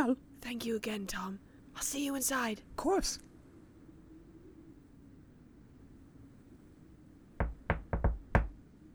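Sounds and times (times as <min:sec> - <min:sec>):
speech: 0:00.1 - 0:03.3
knocking on a front door: 0:07.4 - 0:08.6.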